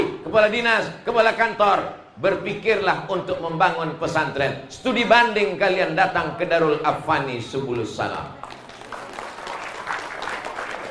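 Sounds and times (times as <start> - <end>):
speech: 0.3 - 8.6
audience applause during a speech: 8.4 - 10.8.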